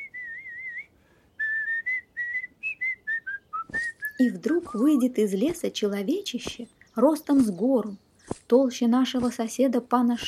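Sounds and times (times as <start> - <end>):
person whistling a lively cheerful melody: 0.0 - 5.1
speech: 4.2 - 10.2.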